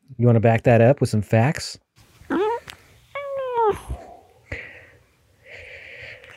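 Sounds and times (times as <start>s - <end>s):
speech: 0.2s - 2.4s
black cat meowing into a microphone: 2.3s - 4.2s
cat snuffling breathy sounds: 3.5s - 6.3s.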